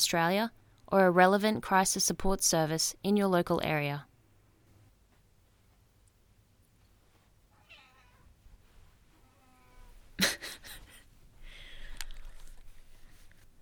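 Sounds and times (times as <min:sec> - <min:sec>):
speech: 0:00.0 - 0:04.1
cat meowing: 0:07.5 - 0:08.3, 0:09.2 - 0:10.0.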